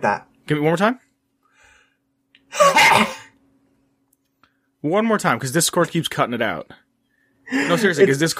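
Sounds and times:
speech: 0:00.0 - 0:01.0, 0:02.5 - 0:03.2, 0:04.8 - 0:06.8, 0:07.5 - 0:08.3
person imitating a harsh dry throaty racking cough: 0:02.6 - 0:03.4.

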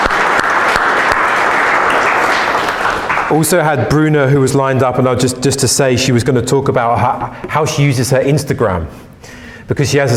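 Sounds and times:
crowd applauding: 0:00.0 - 0:03.7
speech: 0:03.3 - 0:10.1.

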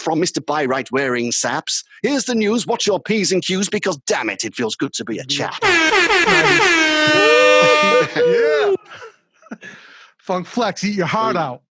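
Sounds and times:
speech: 0:00.0 - 0:11.6
laughter: 0:05.3 - 0:09.9
air horn sound effect sample: 0:05.6 - 0:08.3.

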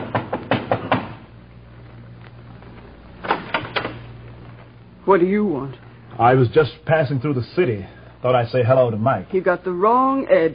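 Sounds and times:
knocking on the door of a home: 0:00.0 - 0:01.2
low steady hum: 0:00.0 - 0:10.5
speech: 0:05.1 - 0:10.5.

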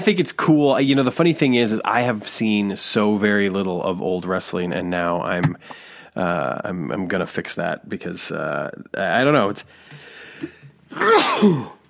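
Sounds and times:
speech: 0:00.0 - 0:11.8
person sneezing: 0:10.4 - 0:11.8.

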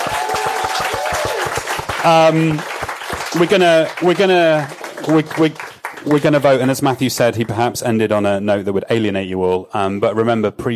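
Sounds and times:
audience clapping: 0:00.0 - 0:07.8
speech: 0:02.0 - 0:10.7.

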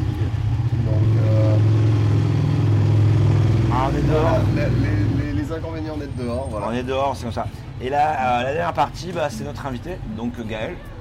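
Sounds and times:
motorcycle engine droning outdoors: 0:00.0 - 0:05.6
speech: 0:05.6 - 0:10.9.

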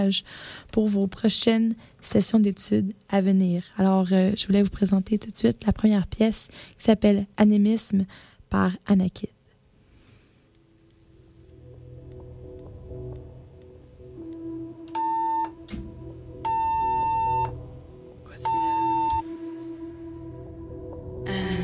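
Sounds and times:
speech: 0:00.0 - 0:09.4
fire alarm blaring sustained electronic tones in radio studio: 0:15.0 - 0:15.6, 0:16.4 - 0:17.6, 0:18.4 - 0:19.3.

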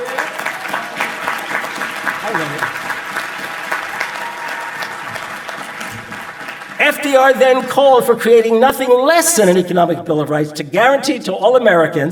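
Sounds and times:
crowd applauding: 0:00.0 - 0:07.8
speech: 0:02.3 - 0:02.8, 0:07.1 - 0:12.1.

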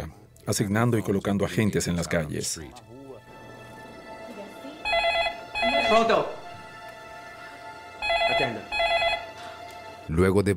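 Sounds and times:
speech: 0:00.5 - 0:03.0, 0:05.9 - 0:06.4, 0:10.1 - 0:10.5
telephone ringing with an incoming call: 0:04.8 - 0:06.2, 0:08.0 - 0:09.5.

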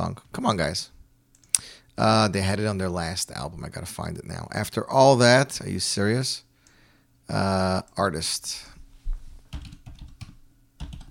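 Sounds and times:
speech: 0:00.0 - 0:01.0, 0:01.6 - 0:06.5, 0:07.3 - 0:08.7
typing on computer keyboard: 0:09.5 - 0:11.0.

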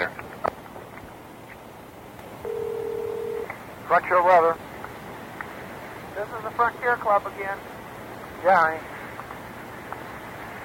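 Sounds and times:
speech: 0:00.0 - 0:00.2, 0:03.9 - 0:04.7, 0:06.2 - 0:07.7, 0:08.4 - 0:08.9
low hiss: 0:00.0 - 0:10.6
telephone dial tone: 0:02.4 - 0:03.5.

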